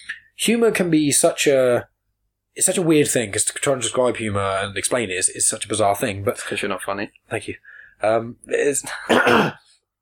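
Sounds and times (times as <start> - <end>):
speech: 0.4 - 1.9, 2.6 - 9.7
raspy throat clearing with voiced grunting: 8.9 - 9.8.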